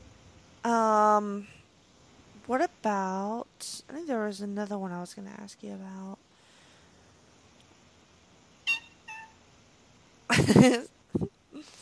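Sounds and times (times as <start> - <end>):
speech: 0.6 - 1.6, 2.5 - 6.2, 10.5 - 11.4
cat meowing: 8.7 - 9.4.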